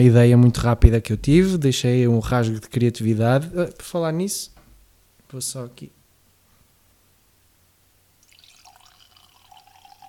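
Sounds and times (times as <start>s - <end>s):
speech: 0.0s - 4.6s, 5.3s - 6.0s
wine being poured into a glass: 8.2s - 10.0s.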